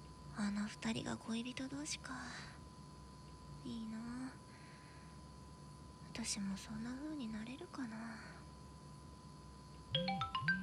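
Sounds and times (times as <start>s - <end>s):
speech: 0.4s - 2.6s, 3.6s - 4.5s, 6.2s - 8.4s, 9.9s - 10.6s
phone ringtone of bright electronic tones: 10.0s - 10.6s.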